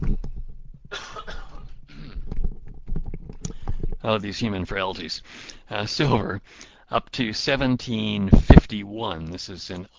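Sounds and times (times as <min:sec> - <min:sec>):
rustling and thumping handling noises of a headset being taken off: 0:00.0 - 0:04.3
harsh raspy coughs: 0:00.9 - 0:02.3
speech: 0:04.0 - 0:09.9.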